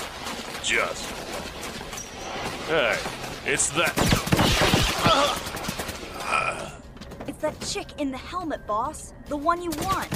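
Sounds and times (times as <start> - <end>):
gunfire from people shooting back at pursuers: 0.0 - 2.0, 3.2 - 6.2
speech: 0.7 - 1.8, 2.4 - 5.6, 7.4 - 10.1.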